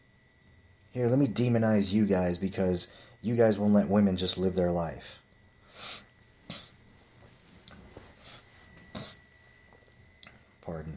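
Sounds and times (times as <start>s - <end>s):
speech: 0.9s - 5.2s, 10.7s - 10.9s
breathy nasal sniffs from a person with nasal problems: 5.7s - 6.8s
sharp nasal snorting bursts: 5.7s - 6.8s, 8.2s - 9.2s.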